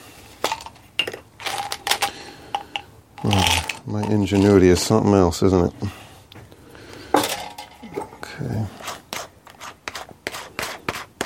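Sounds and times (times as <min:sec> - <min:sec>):
loose miscellaneous screws clinking and rattling as someone rummages: 0:00.4 - 0:04.9
speech: 0:03.2 - 0:06.0.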